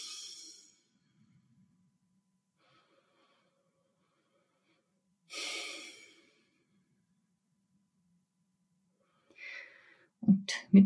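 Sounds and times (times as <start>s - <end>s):
person sitting upright breathing slowly and deeply: 0.0s - 1.4s, 2.6s - 6.8s, 9.0s - 10.2s
speech: 10.3s - 10.8s.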